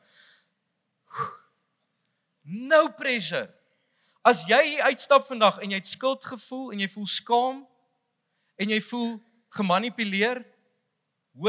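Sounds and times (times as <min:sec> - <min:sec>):
person taking a deep breath in and out: 0:00.0 - 0:01.5
speech: 0:02.5 - 0:03.6, 0:04.2 - 0:07.7, 0:08.6 - 0:10.5.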